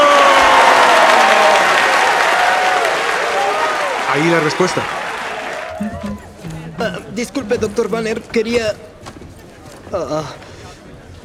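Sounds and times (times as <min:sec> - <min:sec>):
audience applause: 0:00.0 - 0:07.8
speech: 0:04.2 - 0:05.0, 0:07.2 - 0:08.9, 0:09.9 - 0:10.4.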